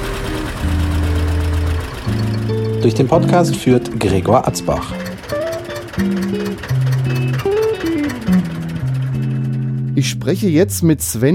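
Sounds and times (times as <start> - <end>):
tractor engine idling with low rumble: 0.0 - 11.1
speech: 2.8 - 5.1, 6.0 - 7.5, 10.0 - 11.3.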